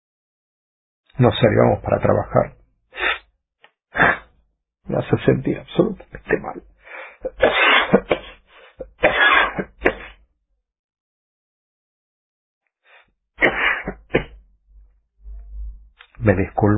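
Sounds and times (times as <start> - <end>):
speech: 1.2 - 2.6, 4.9 - 8.2, 16.2 - 16.7
loud coughing fit of harsh raspy hacking coughs: 4.0 - 4.3, 6.9 - 10.2, 13.4 - 14.4.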